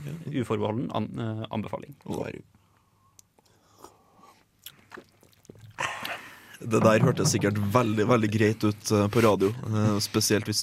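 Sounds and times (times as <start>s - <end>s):
speech: 0.1s - 2.6s, 6.6s - 10.6s
people sipping Laphroaig whisky after a toast in a studio: 3.1s - 6.6s.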